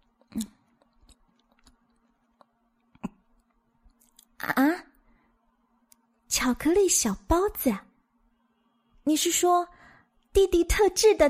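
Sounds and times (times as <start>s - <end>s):
soft chewing of food during a meal: 0.0s - 4.4s
speech: 0.4s - 0.6s, 6.5s - 7.9s, 9.1s - 11.2s.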